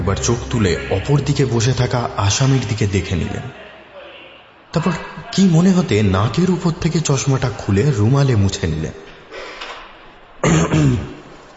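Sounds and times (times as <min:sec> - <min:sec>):
faint hiss: 0:00.0 - 0:11.5
speech: 0:00.1 - 0:03.6, 0:04.7 - 0:09.5, 0:10.4 - 0:11.1
solicitor clearing his throat at a table: 0:10.4 - 0:11.2.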